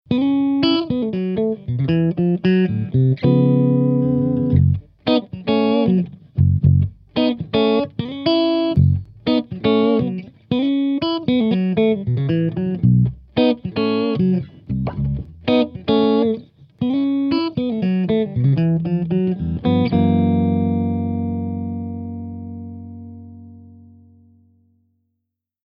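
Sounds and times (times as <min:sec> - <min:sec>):
clean 8 string guitar: 0:00.1 - 0:24.9.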